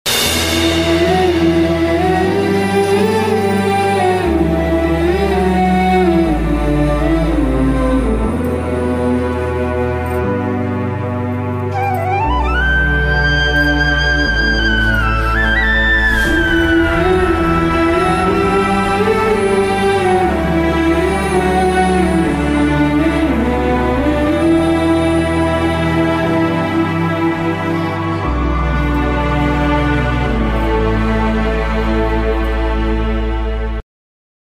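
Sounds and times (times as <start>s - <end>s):
emotional background music: 0.1s - 33.8s.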